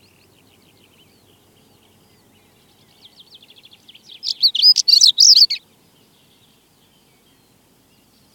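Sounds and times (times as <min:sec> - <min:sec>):
stonechat song with scratchy whistles and chirps: 0:00.0 - 0:08.3.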